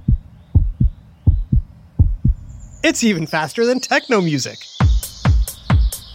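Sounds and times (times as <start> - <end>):
rapid chipmunk heartbeat thumping: 0.0 - 2.8, 4.8 - 6.1
speech: 2.8 - 4.8.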